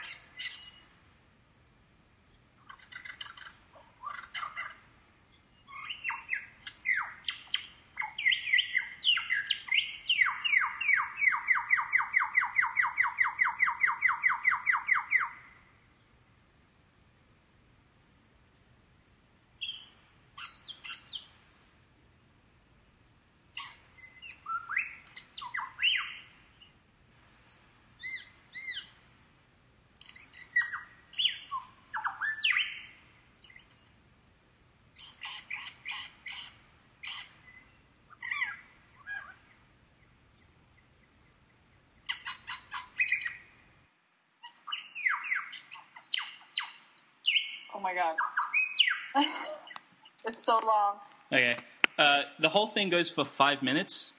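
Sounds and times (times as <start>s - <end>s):
bird calling and trilling: 0.0s - 1.0s, 2.6s - 15.7s, 19.6s - 21.5s, 23.5s - 29.4s, 30.0s - 34.0s, 34.9s - 39.6s, 42.0s - 43.6s, 44.4s - 50.6s
speech: 47.9s - 48.2s, 50.4s - 54.1s.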